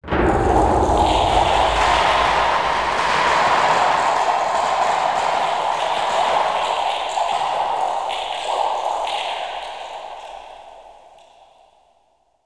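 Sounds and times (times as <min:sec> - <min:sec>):
hard rain: 0:00.3 - 0:09.6.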